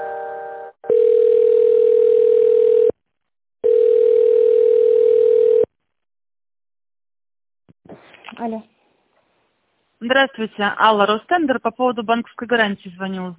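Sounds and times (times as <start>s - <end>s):
buzzy chord-like telephone line tone during call transfer: 0.9s - 2.9s, 3.6s - 5.7s
speech: 10.1s - 13.3s.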